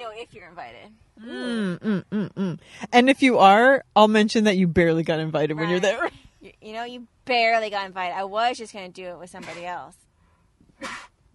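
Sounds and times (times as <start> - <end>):
speech: 0.2 - 10.0, 10.8 - 11.1
sneeze: 9.4 - 9.7, 10.8 - 11.2.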